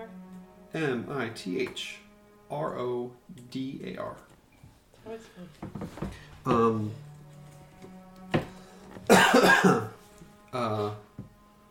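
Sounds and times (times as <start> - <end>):
speech: 0.7 - 4.3, 5.0 - 7.1, 10.5 - 11.0
person coughing: 9.1 - 10.0
throat clearing rasp: 9.1 - 10.0.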